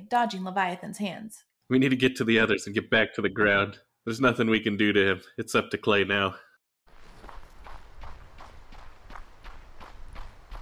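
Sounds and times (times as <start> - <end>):
speech: 0.1 - 6.4
footsteps of someone running on grass: 6.9 - 10.6.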